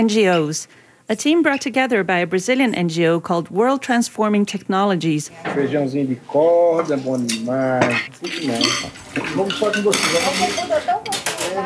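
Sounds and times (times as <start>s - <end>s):
speech: 0.0s - 11.6s
dishes and cutlery clinking and clattering in a sink during washing: 5.3s - 11.6s.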